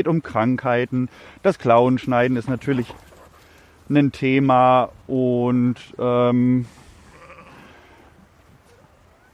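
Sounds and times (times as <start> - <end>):
speech: 0.0 - 3.1, 3.9 - 6.8
steady outdoor noise: 0.0 - 9.3
ewe bleating while chasing a dog: 7.0 - 8.0.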